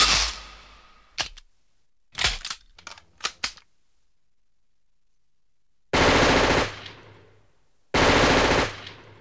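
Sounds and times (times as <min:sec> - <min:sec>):
camouflage submachine gun firing single shots and automatic bursts: 0:06.0 - 0:07.1, 0:08.0 - 0:09.1.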